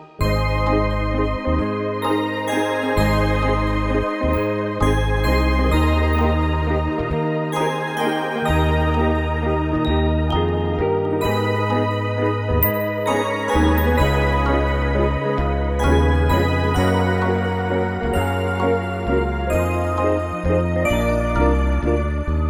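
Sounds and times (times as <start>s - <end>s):
alto in E flat major: 0.3s - 22.4s.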